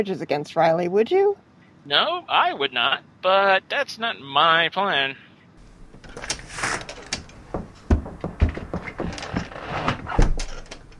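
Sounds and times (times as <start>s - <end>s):
speech: 0.0s - 5.2s
door opening: 5.6s - 10.9s
rattling mechanical clicks: 5.6s - 10.9s
shuffling: 5.6s - 10.9s
solid low thumps: 5.6s - 10.9s.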